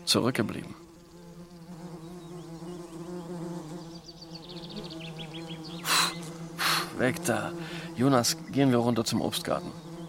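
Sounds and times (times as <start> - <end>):
birds chirping: 0.0 - 10.0
wasps buzzing around food on a table: 0.0 - 10.0
speech: 0.1 - 0.8, 7.0 - 9.9.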